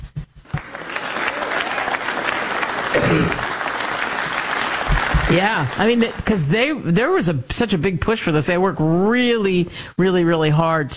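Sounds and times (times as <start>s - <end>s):
crowd applauding: 0.5s - 6.8s
speech: 3.0s - 3.4s, 5.3s - 10.9s.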